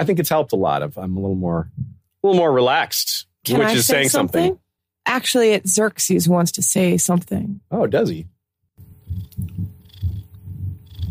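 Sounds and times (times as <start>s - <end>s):
speech: 0.0s - 8.3s
cat purring loudly: 8.8s - 11.0s.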